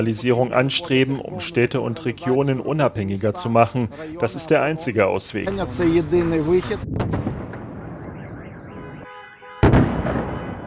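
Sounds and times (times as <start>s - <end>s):
speech: 0.0s - 7.2s
loud explosions from air strikes: 5.5s - 9.0s, 9.6s - 10.6s.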